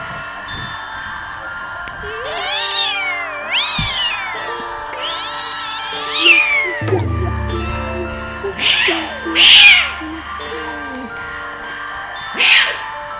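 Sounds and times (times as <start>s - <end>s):
cat meowing: 2.1s - 7.0s, 8.5s - 11.1s, 12.4s - 12.8s
low hum: 6.8s - 11.5s.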